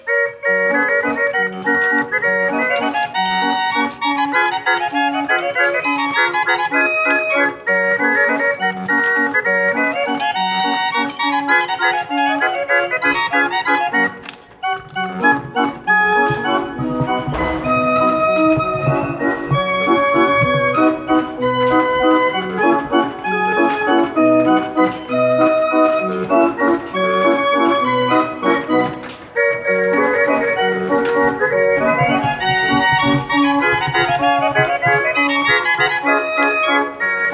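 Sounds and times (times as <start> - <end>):
mechanical barrel automata organ playing: 0.0 - 37.3.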